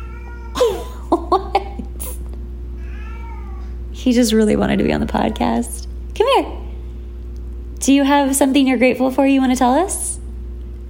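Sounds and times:
cat meowing: 0.0s - 0.6s, 2.8s - 3.8s
low steady hum: 0.0s - 10.8s
speech: 1.1s - 1.4s, 4.0s - 6.6s, 7.8s - 10.1s.

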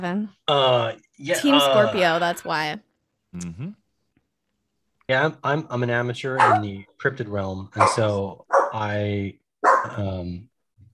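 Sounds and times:
speech: 0.0s - 3.8s, 5.1s - 10.5s
dog barking: 6.4s - 6.7s, 7.8s - 8.8s, 9.6s - 10.0s.

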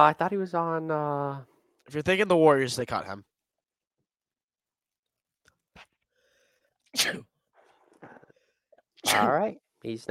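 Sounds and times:
speech: 0.0s - 3.3s, 6.9s - 7.3s, 9.0s - 10.0s
person sneezing: 7.0s - 7.3s, 9.0s - 9.4s.

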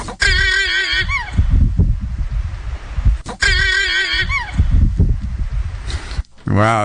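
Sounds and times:
mother llama giving an alarm call in hills northeast of Ukiah: 0.2s - 1.5s, 3.3s - 4.7s
low rumbling: 0.2s - 6.3s.

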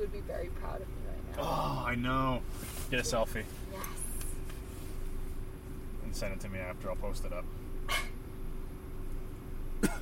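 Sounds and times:
speech: 0.0s - 4.0s, 6.1s - 8.1s
low rumble: 0.0s - 9.9s
person coughing: 9.8s - 9.9s.

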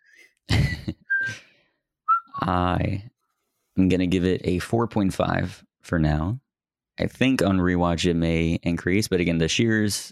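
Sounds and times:
short bright whistled notes: 1.1s - 1.4s, 2.1s - 2.5s
speech: 2.5s - 3.1s, 3.8s - 6.4s, 7.0s - 10.0s.

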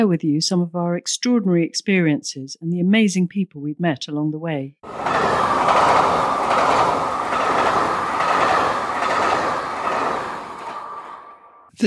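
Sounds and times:
speech: 0.0s - 7.0s
train wheels clickety-clack over rail joints: 4.8s - 11.4s
train to the French Alps rumbling along the tracks: 4.8s - 11.7s.

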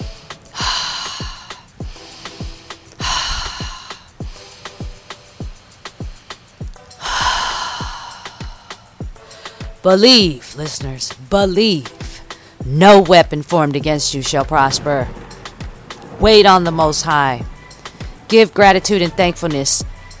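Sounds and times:
deep breaths in through the nose, out through the mouth: 0.0s - 9.8s, 17.7s - 18.3s
music with sharp percussive hits: 0.0s - 9.9s, 13.8s - 20.1s
speech: 9.8s - 12.0s, 12.6s - 15.2s, 16.2s - 17.5s, 18.3s - 20.0s.

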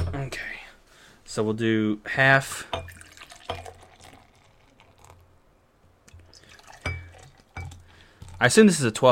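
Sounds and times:
speech: 0.1s - 0.6s, 1.3s - 2.7s, 8.4s - 9.0s
glass clink: 2.7s - 3.9s, 6.7s - 7.8s
beer pouring into a glass: 2.7s - 5.3s, 6.1s - 8.5s.

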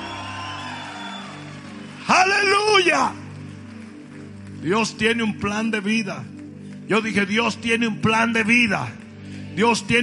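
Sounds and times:
congregation shouting and whooping in praise: 0.0s - 3.0s
speech: 2.3s - 3.2s, 4.6s - 9.0s, 9.6s - 10.0s.

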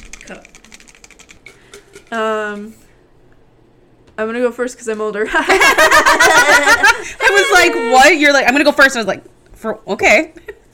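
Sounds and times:
paper question slips rattling in a cup being shuffled: 0.0s - 2.8s
speech: 0.3s - 0.5s, 2.1s - 2.8s, 4.2s - 10.6s
laughter: 5.3s - 8.2s.

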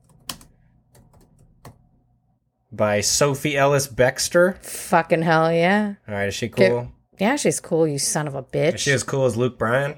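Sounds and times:
typing on a computer keyboard: 0.0s - 1.8s
speech: 2.8s - 9.9s.

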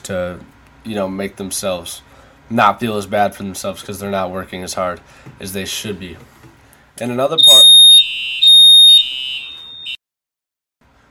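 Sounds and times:
speech: 0.1s - 6.4s, 7.0s - 8.0s
building fire alarm ringing with a piercing high tone: 7.4s - 10.0s.

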